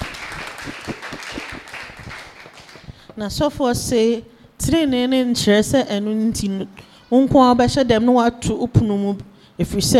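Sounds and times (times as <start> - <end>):
audience clapping hands to celebrate the Lord: 0.0 - 3.2
speech: 3.2 - 9.9.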